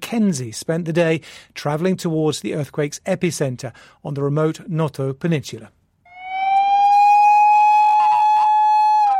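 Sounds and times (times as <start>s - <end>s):
speech: 0.1s - 5.8s
rescue workers' emergency vehicle siren after an earthquake on the Noto Peninsula: 6.1s - 9.1s.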